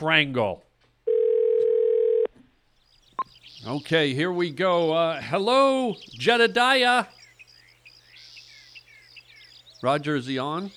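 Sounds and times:
speech: 0:00.0 - 0:00.7, 0:03.6 - 0:07.2, 0:09.8 - 0:10.7
faint low noise: 0:00.0 - 0:10.7
telephone dial tone while placing a call: 0:01.1 - 0:02.3.

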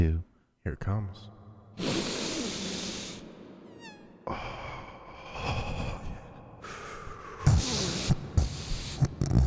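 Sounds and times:
speech: 0:00.0 - 0:02.2, 0:04.3 - 0:04.6
long loud sniffing inhales through the nose: 0:01.8 - 0:03.2, 0:07.4 - 0:09.4.

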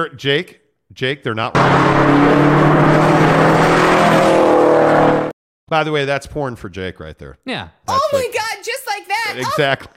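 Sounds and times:
speech: 0:00.0 - 0:04.3, 0:05.7 - 0:08.4, 0:09.2 - 0:09.9
car engine revving: 0:01.6 - 0:05.4.

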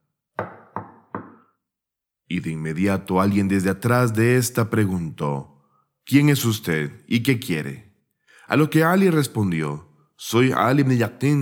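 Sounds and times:
firm knocks on a wooden door: 0:00.4 - 0:01.4
speech: 0:02.3 - 0:05.5, 0:06.1 - 0:07.9, 0:08.5 - 0:11.3.

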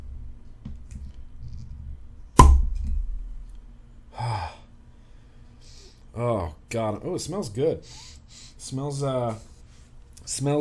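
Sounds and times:
low hum: 0:00.0 - 0:10.6
cork pop from beer bottle: 0:02.4 - 0:03.1
speech: 0:06.2 - 0:09.5, 0:10.3 - 0:10.6.

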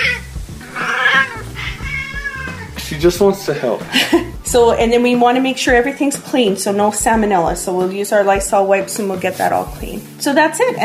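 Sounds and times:
cat meowing on a kitchen counter: 0:00.0 - 0:02.8
speech: 0:03.0 - 0:10.8
laughter: 0:03.8 - 0:04.4.

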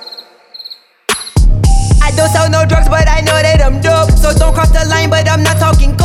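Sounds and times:
crickets chirping in short high pulsing bursts: 0:00.0 - 0:01.4
speech: 0:02.1 - 0:06.0.

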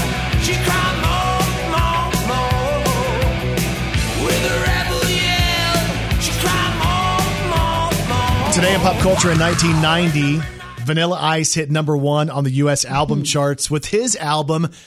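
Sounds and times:
dense electric guitars: 0:00.0 - 0:10.6
sung shouting rock vocal: 0:00.4 - 0:03.4, 0:04.1 - 0:11.0, 0:12.9 - 0:13.6
driving rock drum beat: 0:05.0 - 0:10.6
speech: 0:08.6 - 0:14.8.

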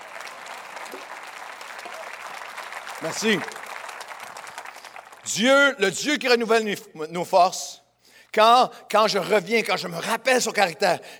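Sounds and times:
church congregation applauding during a sermon: 0:00.0 - 0:05.8
speech: 0:03.0 - 0:03.6, 0:05.3 - 0:07.8, 0:08.4 - 0:11.1.

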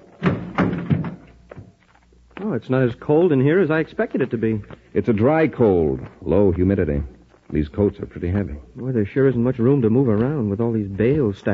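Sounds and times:
heavy chamber door shutting and latching: 0:00.1 - 0:01.3
speech: 0:02.4 - 0:11.5.

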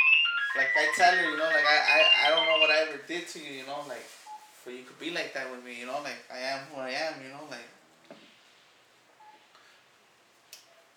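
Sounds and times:
short electronic telephone tones from an incoming phone call: 0:00.0 - 0:03.0
steady hiss: 0:00.0 - 0:10.9
speech: 0:00.6 - 0:07.8.

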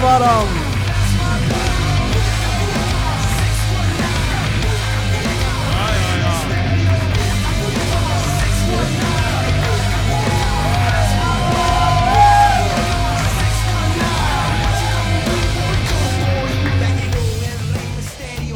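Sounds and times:
large audience cheering: 0:00.0 - 0:17.2
steady musical backing: 0:00.0 - 0:18.5
speech: 0:00.2 - 0:00.7
audience whoops and yells: 0:09.9 - 0:16.7.

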